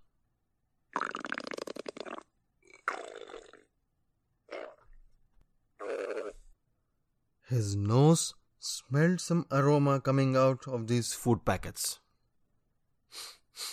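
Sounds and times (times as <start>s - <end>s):
stomach growling: 0.9s - 3.8s, 4.4s - 5.1s, 5.8s - 6.6s
speech: 7.5s - 12.0s, 13.1s - 13.7s.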